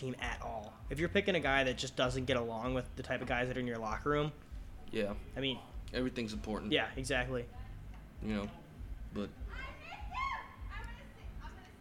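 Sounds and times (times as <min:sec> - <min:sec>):
speech: 0:00.0 - 0:07.6, 0:08.2 - 0:09.7
low rumble: 0:04.0 - 0:11.7
college-aged people screaming outside the window: 0:09.5 - 0:10.6.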